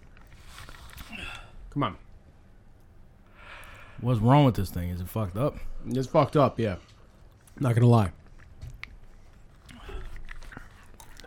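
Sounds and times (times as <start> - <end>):
speech: 1.8 - 2.1, 4.0 - 6.9, 7.6 - 8.2
person biting and chewing crunchy food: 7.2 - 11.2.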